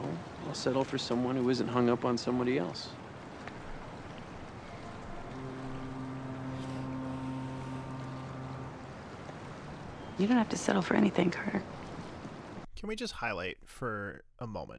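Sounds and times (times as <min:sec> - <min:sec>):
water gently lapping against an edge: 0:00.0 - 0:14.7
speech: 0:00.5 - 0:03.0, 0:10.2 - 0:11.8, 0:12.8 - 0:14.7
low droning hum: 0:03.0 - 0:12.2.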